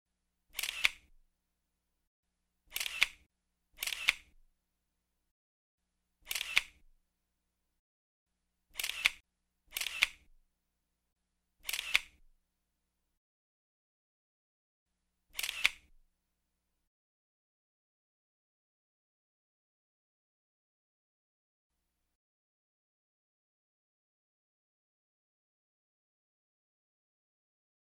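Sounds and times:
camera shutter click: 0:00.5 - 0:01.1, 0:02.7 - 0:03.2, 0:03.8 - 0:04.4, 0:06.3 - 0:06.8, 0:08.8 - 0:10.3, 0:11.6 - 0:12.2, 0:15.4 - 0:15.9.

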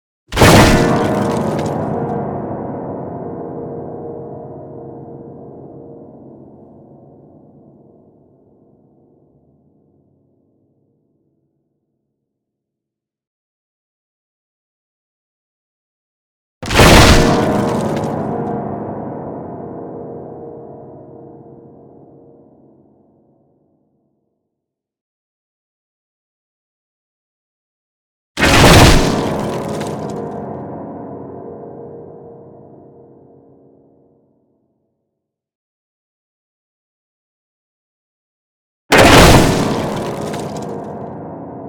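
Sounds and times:
grand piano being smashed: 0:00.3 - 0:03.2, 0:16.6 - 0:20.1, 0:28.4 - 0:31.7, 0:38.9 - 0:41.6.

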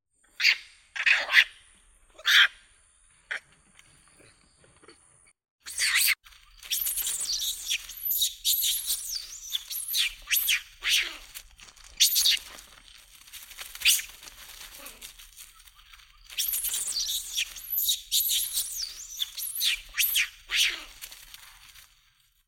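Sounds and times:
macaque calling: 0:02.2 - 0:02.6, 0:05.7 - 0:12.6, 0:13.8 - 0:21.2.

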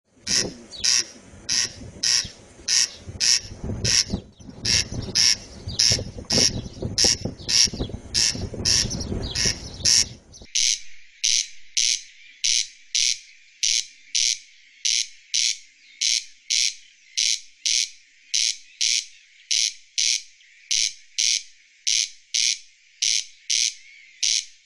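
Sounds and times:
corncrake calling: 0:00.1 - 0:24.6.

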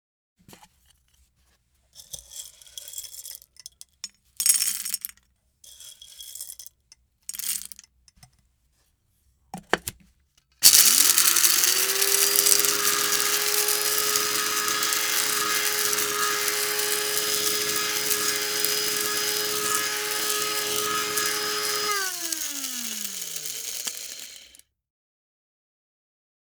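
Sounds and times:
coffee grinder: 0:02.0 - 0:07.8, 0:10.6 - 0:24.6.

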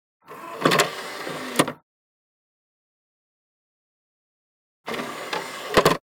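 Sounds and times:
computer CD drive: 0:00.2 - 0:01.8, 0:04.9 - 0:06.0.

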